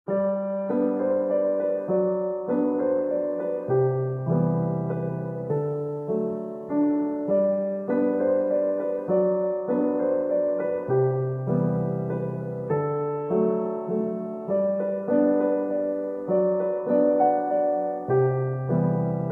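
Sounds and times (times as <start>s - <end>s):
piano song: 0.0s - 19.3s.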